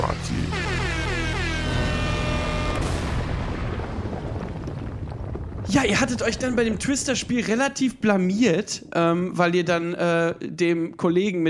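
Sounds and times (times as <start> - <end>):
speech: 0.0 - 0.8, 5.7 - 11.4
podcast segment jingle with blaring horn-like tones: 0.4 - 3.0
booming explosive crash in a jingle: 0.5 - 8.0.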